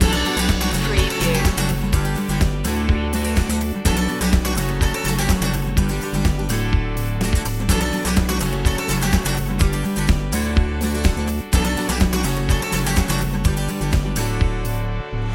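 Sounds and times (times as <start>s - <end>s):
inspirational acoustic guitar loop: 0.0s - 15.2s.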